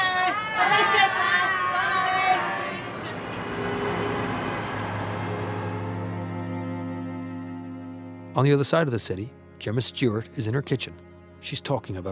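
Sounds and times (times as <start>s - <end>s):
excited children chattering while boarding buses: 0.0s - 4.5s
steady noisy rumble: 0.4s - 8.0s
speech: 8.4s - 12.1s.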